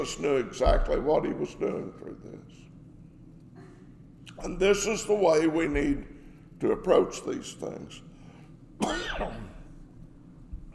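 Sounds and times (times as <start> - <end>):
speech: 0.0 - 2.7, 4.4 - 8.1, 8.8 - 9.5
person coughing: 8.8 - 9.7
rough throat-clearing rasp: 8.8 - 9.7.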